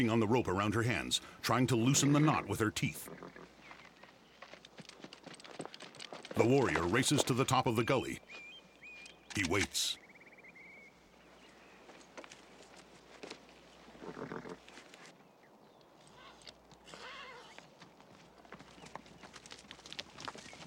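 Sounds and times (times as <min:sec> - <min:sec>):
speech: 0:00.0 - 0:03.5, 0:06.4 - 0:08.4, 0:09.3 - 0:10.0
saddled riderless horse hooves clip-clopping: 0:00.8 - 0:09.5, 0:11.2 - 0:15.2, 0:16.2 - 0:20.6.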